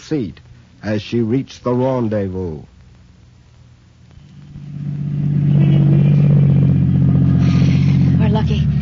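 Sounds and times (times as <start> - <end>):
speech: 0.1 - 2.7
car engine rumbling with light mechanical clatter: 4.1 - 8.8.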